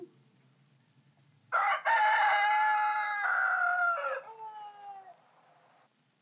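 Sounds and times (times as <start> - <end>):
rooster crowing: 1.5 - 5.8.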